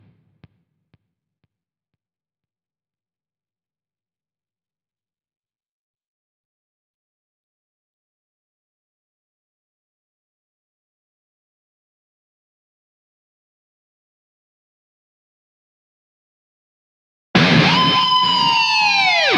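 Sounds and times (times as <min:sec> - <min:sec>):
guitar dive bomb: 0:17.4 - 0:19.3.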